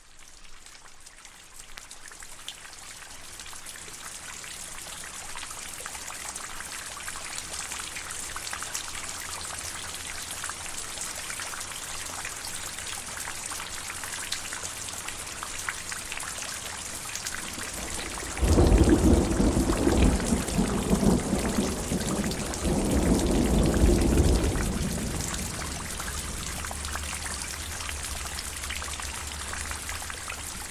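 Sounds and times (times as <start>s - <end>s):
steady rain pattering on a surface: 0.0s - 30.6s
deep rumble of thunder: 17.6s - 28.4s.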